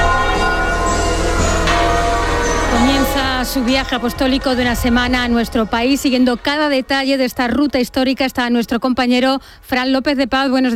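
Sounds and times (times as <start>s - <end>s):
church bells of Madrid's churches ringing together: 0.0s - 6.7s
speech: 3.4s - 10.7s.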